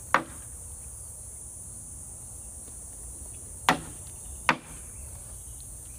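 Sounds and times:
cicadas buzzing in a bush: 0:00.0 - 0:05.9
sharp knocks: 0:03.7 - 0:04.8.

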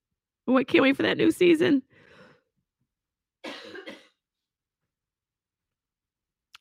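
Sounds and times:
speech: 0:00.5 - 0:01.9
person coughing: 0:03.4 - 0:04.2.

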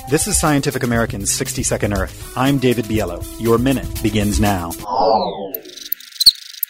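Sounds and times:
speech: 0:00.1 - 0:05.7
male cricket chirping love song: 0:05.6 - 0:06.6.

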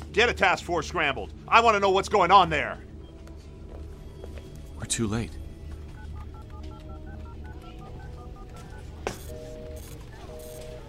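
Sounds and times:
speech: 0:00.2 - 0:02.9, 0:04.8 - 0:05.4
electronic telephone keypad dialing tones: 0:05.7 - 0:10.8.

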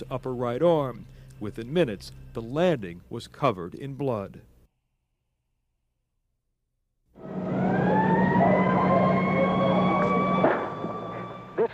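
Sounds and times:
speech: 0:00.0 - 0:04.5
ambulance sirens wailing on a university campus: 0:07.2 - 0:11.7.

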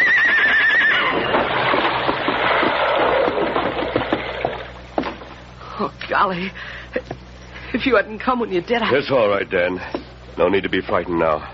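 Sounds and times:
horse whinnying while pulled back by the reins: 0:00.0 - 0:01.6
clattering rush of movement and scuffling: 0:01.1 - 0:05.4
speech: 0:06.2 - 0:11.5.

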